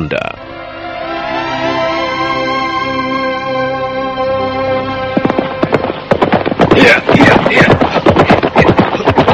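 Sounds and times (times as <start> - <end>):
long sustained tone: 0.3 - 5.6
hooves of a ridden horse galloping hard into a training ground at dusk: 4.7 - 9.3.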